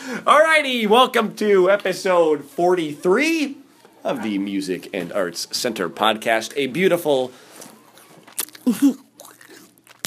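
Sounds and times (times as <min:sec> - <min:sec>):
speech: 0:00.1 - 0:07.7, 0:08.6 - 0:09.0
person chewing an apple into a microphone: 0:07.6 - 0:10.0.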